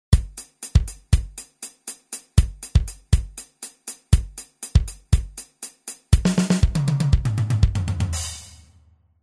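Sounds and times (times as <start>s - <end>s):
drums pumping and breathing: 0.1s - 8.7s.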